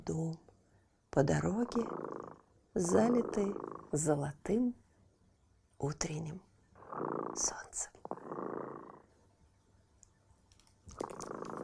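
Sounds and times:
speech: 0:00.0 - 0:00.4, 0:01.2 - 0:02.2, 0:02.8 - 0:04.8, 0:05.8 - 0:08.0
cat purring: 0:01.3 - 0:04.3, 0:06.8 - 0:09.2, 0:10.9 - 0:11.6.

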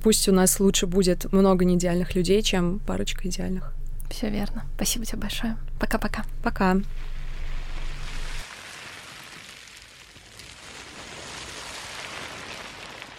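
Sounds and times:
speech: 0:00.0 - 0:07.2
low hum: 0:00.0 - 0:08.4
beach plastic waste rustling: 0:06.9 - 0:13.1.

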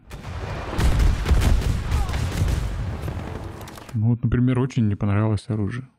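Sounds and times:
heavy video game explosions with deep low-end rumble: 0:00.0 - 0:03.9
speech: 0:04.0 - 0:05.9.

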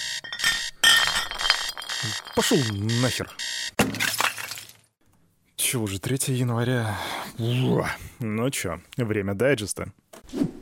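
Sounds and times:
loud shrill alarm clock ringtone of bright glassy chiming tones: 0:00.0 - 0:00.8, 0:01.6 - 0:03.7
speech: 0:02.0 - 0:04.0, 0:05.7 - 0:10.5.

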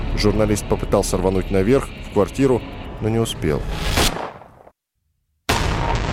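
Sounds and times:
speech: 0:00.2 - 0:04.0
gunshot: 0:03.8 - 0:04.6, 0:05.5 - 0:06.1.

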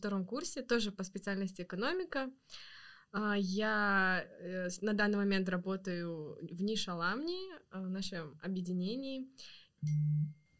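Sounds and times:
speech: 0:00.0 - 0:10.4
phone notification chime for bank deposit: 0:09.8 - 0:10.5.

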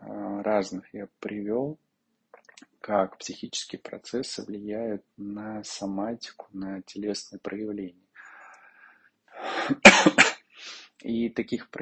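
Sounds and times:
speech: 0:00.4 - 0:01.9, 0:02.6 - 0:08.0, 0:09.4 - 0:11.8
breathy exhale: 0:08.2 - 0:09.8
person coughing: 0:09.4 - 0:10.8.

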